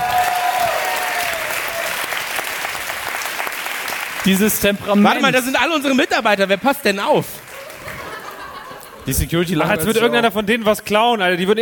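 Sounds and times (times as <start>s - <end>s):
live concert crowd applauding after an encore: 0.0s - 9.0s
speech: 4.2s - 7.5s, 9.0s - 11.6s
laughter: 7.5s - 10.0s.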